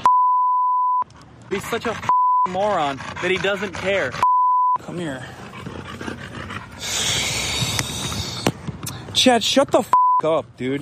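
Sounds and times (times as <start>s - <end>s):
dog panting: 1.1s - 8.4s
dog snorting: 1.5s - 4.3s, 5.0s - 8.4s
speech: 1.5s - 5.4s, 9.2s - 10.8s.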